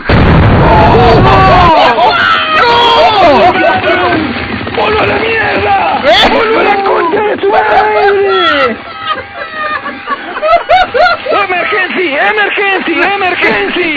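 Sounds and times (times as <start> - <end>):
loud explosion as someone blows up: 0.0 - 6.8
many voices shouting and yelling excitedly in Spanish: 0.4 - 12.5
laughter: 1.6 - 4.3, 6.1 - 13.9.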